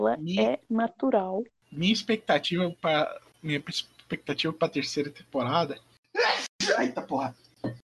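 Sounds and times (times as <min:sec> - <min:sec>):
speech: 0:00.0 - 0:07.8
laughter: 0:01.8 - 0:05.6, 0:06.6 - 0:07.3
person sneezing: 0:06.2 - 0:07.3.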